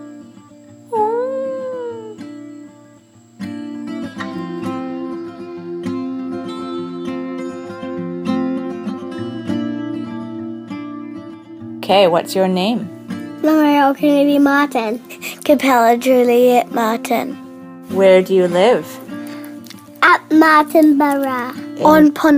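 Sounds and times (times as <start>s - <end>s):
voice imitating a fox howling: 0.9s - 2.3s
speech: 11.9s - 19.0s, 20.4s - 22.3s.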